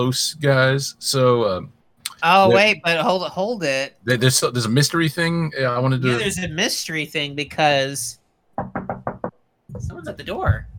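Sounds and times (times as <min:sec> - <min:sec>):
speech: 0:00.0 - 0:08.8, 0:10.0 - 0:10.7
firm knocks on a door: 0:08.6 - 0:09.4.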